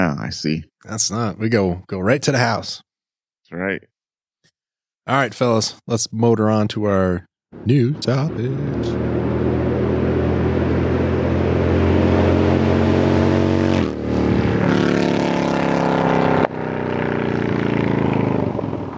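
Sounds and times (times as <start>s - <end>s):
speech: 0.2s - 2.9s, 3.5s - 3.9s, 5.1s - 9.2s
motorcycle engine running: 8.4s - 18.9s.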